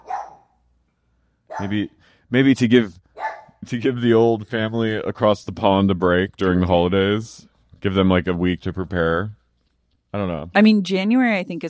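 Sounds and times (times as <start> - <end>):
dog barking: 0.0 - 0.6, 1.5 - 1.9, 3.1 - 3.6
speech: 1.6 - 3.0, 3.6 - 9.4, 10.1 - 11.6.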